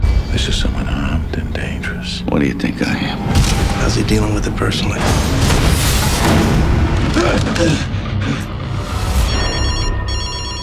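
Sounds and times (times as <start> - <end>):
deep booming rumble: 0.0 - 8.9
speech: 0.5 - 6.4, 7.2 - 8.0
telephone ringing with trilling tone: 9.3 - 10.6.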